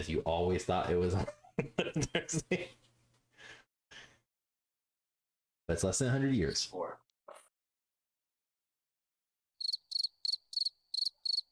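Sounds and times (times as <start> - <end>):
speech: 0.0 - 2.8, 5.7 - 7.0
laughter: 1.2 - 2.7
cricket chirping: 9.6 - 11.5.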